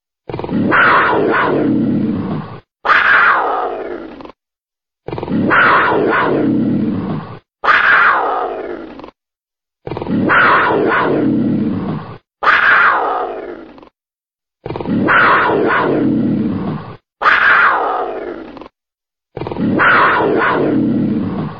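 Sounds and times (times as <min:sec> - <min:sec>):
bobcat: 0:00.3 - 0:01.7, 0:02.8 - 0:04.4, 0:05.1 - 0:09.2, 0:09.8 - 0:11.6, 0:12.4 - 0:13.9, 0:14.6 - 0:18.7, 0:19.4 - 0:21.5.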